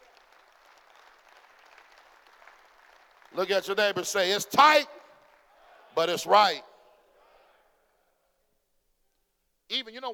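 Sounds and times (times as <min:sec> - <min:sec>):
crowd clapping: 0:00.0 - 0:06.5
speech: 0:03.3 - 0:05.0, 0:06.0 - 0:06.7, 0:09.7 - 0:10.1.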